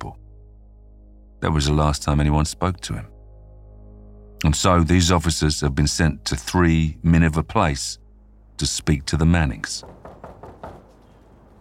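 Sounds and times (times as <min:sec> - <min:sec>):
speech: 0:01.4 - 0:03.1, 0:04.4 - 0:08.0, 0:08.6 - 0:10.1
knocking on a door: 0:09.8 - 0:11.2.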